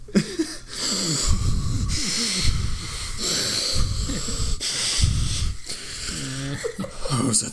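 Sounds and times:
voice imitating heavy breathing through a mask: 0.0 - 7.3.

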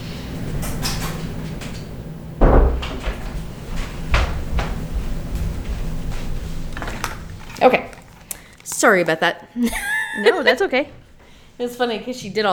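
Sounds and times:
low hum: 0.0 - 12.5
door banging open and knocking shut: 0.8 - 5.3
lighter clattering: 0.8 - 8.5
speech: 8.8 - 11.0, 11.6 - 12.5
laughter: 9.6 - 10.8.

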